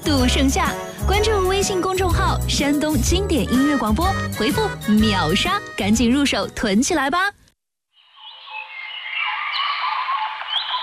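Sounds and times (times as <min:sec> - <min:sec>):
speech: 0:00.1 - 0:07.4
dense chorus of birdsong with overlapping chirps and trills: 0:08.2 - 0:10.8.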